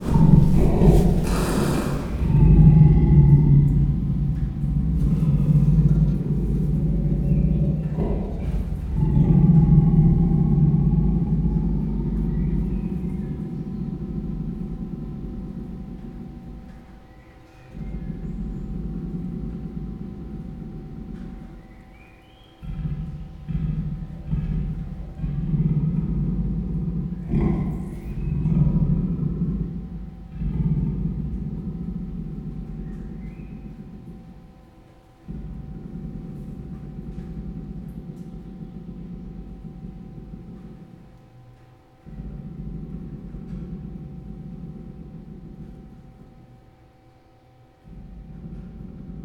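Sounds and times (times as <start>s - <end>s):
Persian leopard growling in Pecs zoo: 0.0s - 49.2s.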